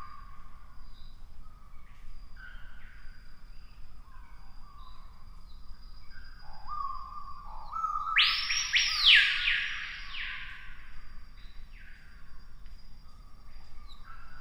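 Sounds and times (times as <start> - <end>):
screaming piha whistled song: 6.6 - 10.6.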